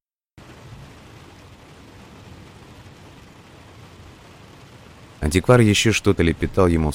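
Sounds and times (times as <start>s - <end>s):
distant thunder rumbling: 0.4s - 6.9s
drizzling rain: 0.4s - 6.9s
speech: 5.2s - 6.9s.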